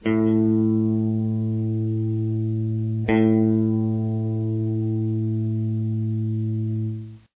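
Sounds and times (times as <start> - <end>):
guitar A string note: 0.0 - 7.3.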